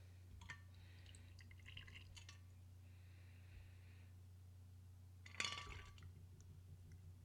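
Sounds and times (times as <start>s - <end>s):
steady low hum: 0.0s - 7.2s
cocktail strained from a shaker trickling into a shot glass: 0.4s - 2.4s.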